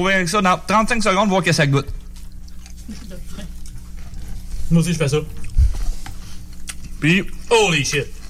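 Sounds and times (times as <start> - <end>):
speech: 0.0 - 2.0, 2.9 - 3.5, 4.7 - 5.4, 7.0 - 8.2
wet chewing and crunching of a potato chip with soda: 1.8 - 8.2.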